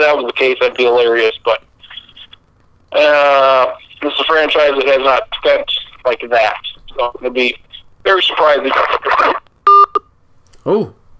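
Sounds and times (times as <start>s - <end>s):
speech: 0.0s - 1.7s, 2.9s - 9.4s, 10.6s - 11.0s
steady electronic phone tone: 9.7s - 10.1s.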